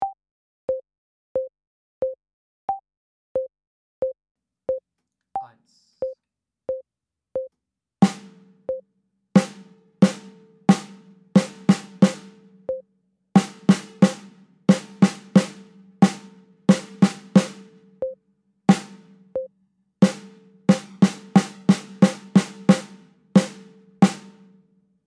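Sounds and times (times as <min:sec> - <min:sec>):
snare drum: 0:08.0 - 0:08.6, 0:09.4 - 0:12.6, 0:13.4 - 0:18.0, 0:18.7 - 0:19.4, 0:20.0 - 0:24.6.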